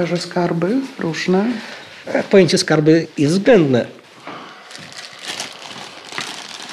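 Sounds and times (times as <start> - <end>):
speech: 0.0 - 4.0
plastic bag crinkling as it is pulled from a pocket: 4.6 - 6.7.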